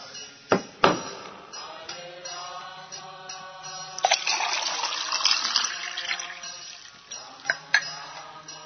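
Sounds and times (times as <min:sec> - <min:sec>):
water pouring into a cup: 0:04.0 - 0:07.0
cup clinking while handled: 0:04.0 - 0:08.6.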